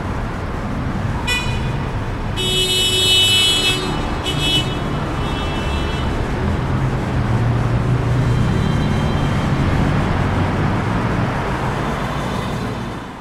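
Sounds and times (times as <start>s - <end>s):
busy street traffic noise: 0.0s - 13.1s
car horn honking: 1.2s - 6.2s.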